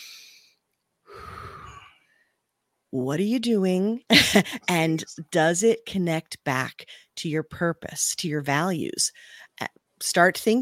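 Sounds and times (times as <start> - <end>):
deep breath: 0.0 - 2.5
speech: 2.9 - 10.5.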